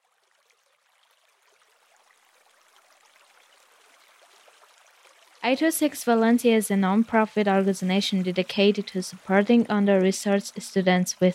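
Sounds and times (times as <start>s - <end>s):
river water flowing: 0.0s - 11.3s
speech: 5.4s - 11.3s.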